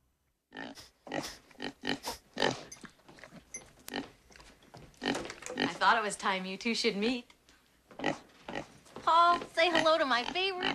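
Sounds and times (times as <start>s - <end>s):
sow snorting and sniffing as it trots in: 0.6s - 4.0s
speech: 5.8s - 7.3s, 9.1s - 10.7s.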